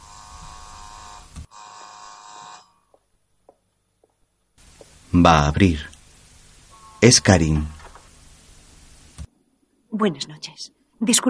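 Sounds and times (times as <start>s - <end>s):
loud harsh electric door buzzer: 0.0s - 3.0s, 6.7s - 8.2s
speech: 5.1s - 5.9s, 7.0s - 7.8s, 10.0s - 11.2s.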